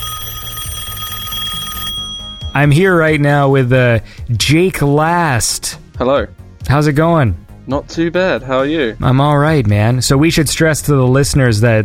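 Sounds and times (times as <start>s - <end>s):
telephone ringing with a bright electronic trill: 0.0s - 3.2s
speech: 2.6s - 11.8s.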